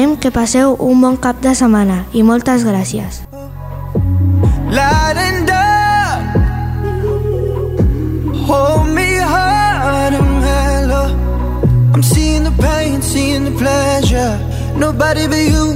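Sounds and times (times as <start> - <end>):
speech: 0.1 - 3.3, 4.7 - 5.4, 8.5 - 9.0, 12.0 - 15.7
instrumental song intro with deep sustained bass and gliding melodic lines: 3.3 - 15.7.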